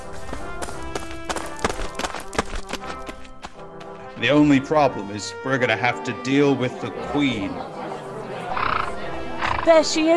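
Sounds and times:
horse hooves clip-clopping in a trot: 0.0s - 4.2s
speech: 4.2s - 7.8s, 9.6s - 10.1s.

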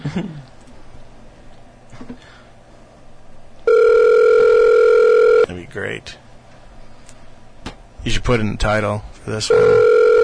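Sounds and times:
speech: 0.2s - 0.5s, 5.8s - 6.2s, 8.1s - 10.2s
telephone ringing tone over the line: 3.7s - 5.5s, 9.5s - 10.2s.

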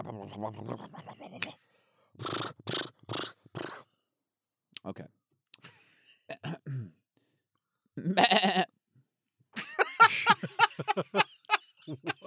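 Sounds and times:
speech: 0.0s - 1.6s
person vocalizing a goat-like machine-gun imitation: 2.2s - 3.8s
laughter: 9.6s - 12.2s.

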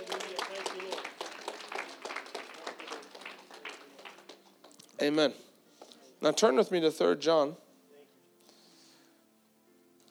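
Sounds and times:
audience at a church service clapping hands in praise: 0.0s - 4.5s
voices mingled under applause: 0.0s - 4.6s
speech: 5.0s - 5.5s, 6.2s - 7.6s.

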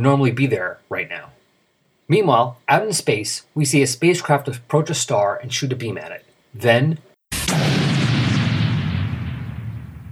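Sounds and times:
speech: 0.0s - 1.3s, 2.1s - 7.9s
loud explosion with deep sustained rumble: 7.3s - 10.0s.

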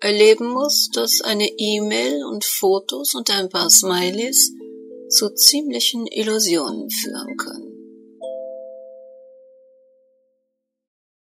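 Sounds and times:
speech: 0.0s - 7.7s
melodic two-tone computer message notification chime: 3.6s - 10.2s.

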